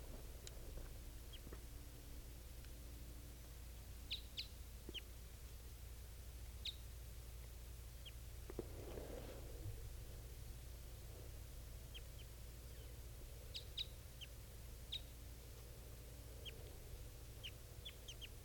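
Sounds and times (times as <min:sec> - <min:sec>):
low hum: 0:00.0 - 0:18.4
female birds chirping: 0:10.4 - 0:18.4.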